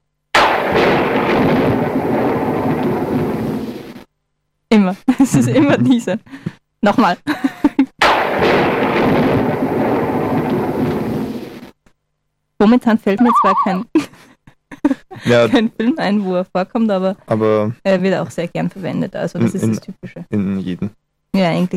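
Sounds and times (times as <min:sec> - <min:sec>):
stock thunderclap sound effect: 0:00.4 - 0:04.0, 0:08.0 - 0:11.7
speech: 0:04.8 - 0:07.5, 0:12.6 - 0:14.2, 0:14.8 - 0:21.7
laughter: 0:05.1 - 0:06.2, 0:13.2 - 0:16.3, 0:19.4 - 0:20.9.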